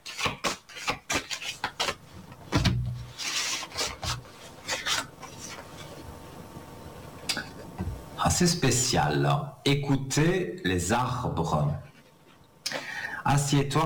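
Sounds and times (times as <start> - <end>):
oracle card deck being shuffled and a card drawn: 0.0 - 5.9
speech: 8.3 - 11.9, 13.3 - 13.8.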